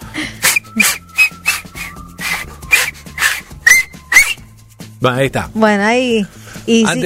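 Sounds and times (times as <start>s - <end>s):
breathy puffs of air from attempted whistling: 0.0s - 3.6s
thin whistle squeaks: 0.4s - 4.5s
speech: 0.8s - 1.0s, 5.0s - 7.0s.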